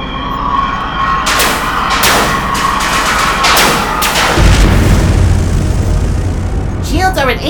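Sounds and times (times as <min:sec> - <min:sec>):
loud constant roar: 0:00.0 - 0:07.4
spaceship weapons firing at enemy fighters: 0:01.3 - 0:06.9
deep rumbling surge: 0:01.4 - 0:07.4
speech: 0:07.2 - 0:07.4.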